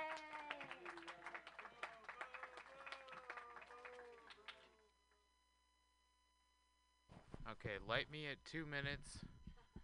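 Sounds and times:
scattered whoops and cheering voices: 0:00.0 - 0:04.3
audience clapping to welcome a comedian onto the stage: 0:00.0 - 0:04.9
speech: 0:07.5 - 0:09.3.

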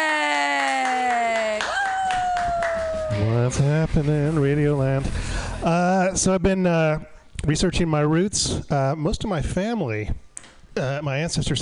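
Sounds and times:
audience clapping and cheering: 0:00.0 - 0:04.3
speech: 0:03.2 - 0:10.2, 0:10.8 - 0:11.6.

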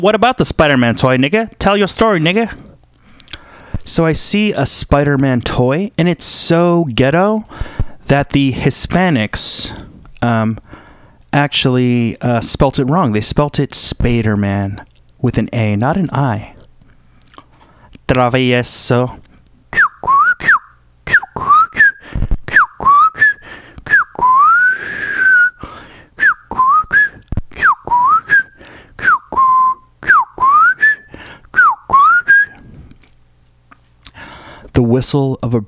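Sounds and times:
speech: 0:00.0 - 0:02.7, 0:03.9 - 0:16.6, 0:18.1 - 0:19.2, 0:35.0 - 0:35.6
person whistling a lively melody: 0:19.8 - 0:25.6, 0:26.2 - 0:32.6.

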